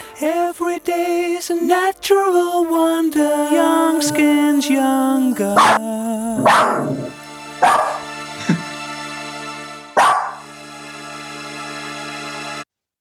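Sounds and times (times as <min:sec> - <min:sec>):
speech: 0:00.2 - 0:07.8
steady sustained musical backing: 0:02.1 - 0:12.6
dog barking on a song recording: 0:05.6 - 0:05.8, 0:06.4 - 0:08.7, 0:10.0 - 0:10.4.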